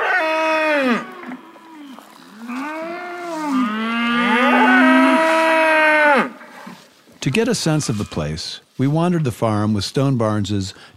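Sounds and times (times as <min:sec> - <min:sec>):
cattle mooing on a diversified farm: 0:00.0 - 0:06.8
speech: 0:07.2 - 0:10.9.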